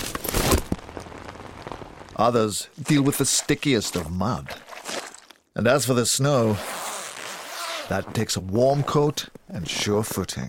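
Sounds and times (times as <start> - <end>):
rain pattering onto a hard surface: 0.6 - 2.4
speech: 2.2 - 4.7, 5.6 - 6.8, 7.9 - 10.4.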